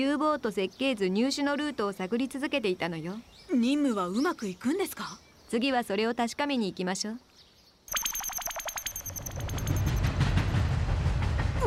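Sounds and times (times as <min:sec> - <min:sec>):
speech: 0:00.0 - 0:07.3
rapid electric bell ringing: 0:07.9 - 0:10.6
interior rumble of a train travelling from Berlin to Paris: 0:10.0 - 0:11.6.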